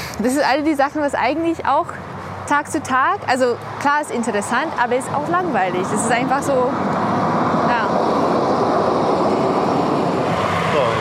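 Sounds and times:
speech: 0.2 - 7.2
tram rumbling past: 2.7 - 10.9.

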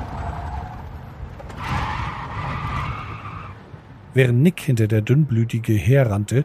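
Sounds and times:
car tires squealing while skidding around a corner: 0.0 - 3.8
car engine rumbling: 0.0 - 6.4
speech: 4.2 - 6.4.

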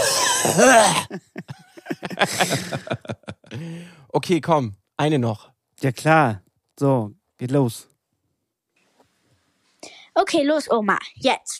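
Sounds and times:
person imitating a grandfather's loud exaggerated coughing: 0.0 - 3.0
speech: 0.4 - 1.6, 2.2 - 7.9, 10.2 - 11.5
laughter: 1.1 - 3.7.

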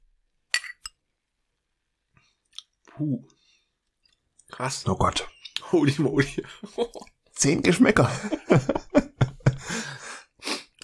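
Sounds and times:
glasses clinking in a toast with energy drinks: 0.5 - 0.9
speech: 3.0 - 3.4, 4.6 - 9.0
laughter: 7.9 - 10.1.

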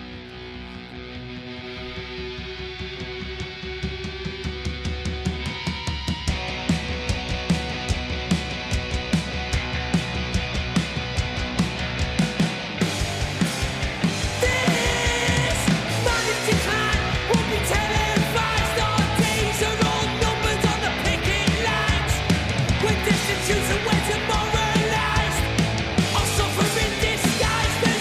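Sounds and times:
energetic British indie rock song with drums and distorted guitars: 0.0 - 27.9.

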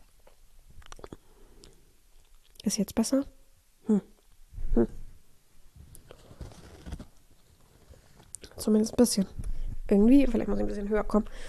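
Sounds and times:
speech: 2.7 - 4.1, 4.8 - 5.0, 8.7 - 11.4
quiet mouth sounds: 3.8 - 5.1
person swallowing with wet clicks and gulps: 4.6 - 5.0.

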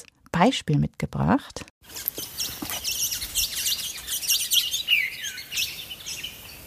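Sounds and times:
speech: 0.0 - 2.6
birds chirping at a canyon waterhole: 1.9 - 6.6.

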